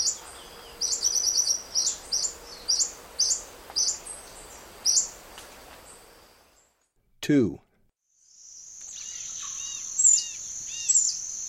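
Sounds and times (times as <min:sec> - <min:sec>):
olive-spotted hummingbird chipping notes in the South American Eastern Lowlands: 0:00.0 - 0:05.5, 0:08.4 - 0:11.4
speech: 0:07.3 - 0:07.7.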